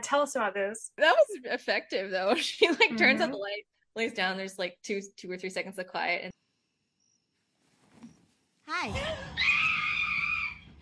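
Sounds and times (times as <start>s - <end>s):
speech: 0.0s - 6.4s, 8.7s - 9.5s
woman screaming in a film scene: 8.9s - 10.6s.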